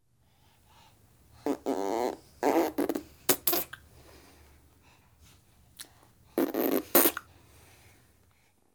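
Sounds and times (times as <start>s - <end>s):
6 month old baby girl blowing raspberries: 0.7s - 4.6s, 5.2s - 8.0s.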